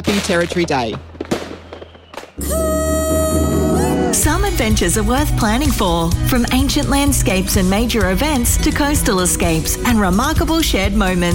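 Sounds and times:
speech: 0:00.0 - 0:01.1, 0:04.2 - 0:11.3
fireworks crackling at a Territory Day celebration: 0:00.0 - 0:03.3
fireworks hissing rush with whistling tones at a Territory Day celebration: 0:01.5 - 0:04.1.

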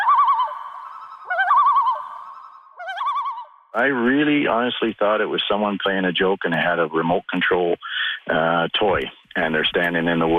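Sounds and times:
common loon tremolo call: 0:00.0 - 0:03.8
speech: 0:03.7 - 0:10.3.

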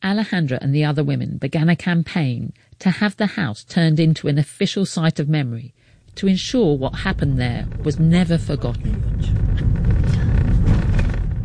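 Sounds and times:
speech: 0:00.0 - 0:10.2
car driving along a quiet street: 0:05.9 - 0:11.4.

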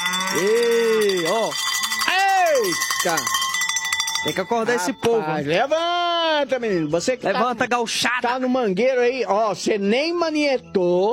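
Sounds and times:
bell ringing to wake people on a farm at milking time: 0:00.0 - 0:05.7
speech: 0:00.4 - 0:00.7, 0:03.0 - 0:03.4, 0:04.2 - 0:11.1.

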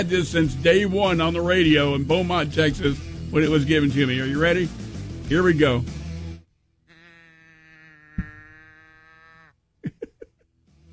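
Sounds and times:
speech: 0:00.0 - 0:06.0
well-worn toy cow moo box mooing, turned upside down: 0:06.9 - 0:09.5.

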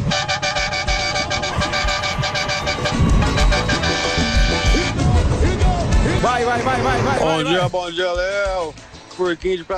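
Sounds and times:
several vehicle horns honking in a collective horn salute: 0:00.0 - 0:07.7
vehicle engine rumble: 0:00.0 - 0:07.7
speech: 0:07.2 - 0:09.7.

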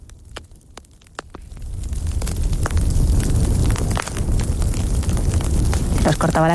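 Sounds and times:
fire crackling in a fireplace: 0:00.0 - 0:06.5
roar of flames: 0:00.0 - 0:06.5
speech: 0:06.2 - 0:06.5.

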